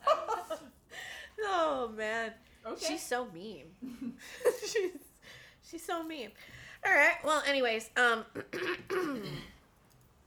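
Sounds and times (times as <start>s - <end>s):
speech: 1.8s - 5.0s, 5.7s - 9.5s
person clearing throat: 8.4s - 9.6s.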